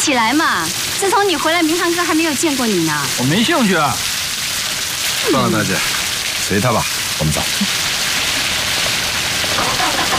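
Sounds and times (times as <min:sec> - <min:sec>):
speech: 0:00.0 - 0:04.2, 0:05.2 - 0:07.8
steady rain falling outdoors: 0:00.0 - 0:10.1.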